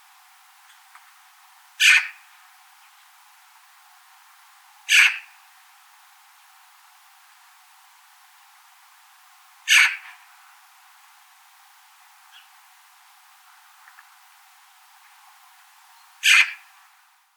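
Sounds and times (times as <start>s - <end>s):
Eurasian magpie harsh calls: 1.8s - 2.3s, 4.9s - 5.4s, 9.7s - 10.2s, 16.2s - 16.7s.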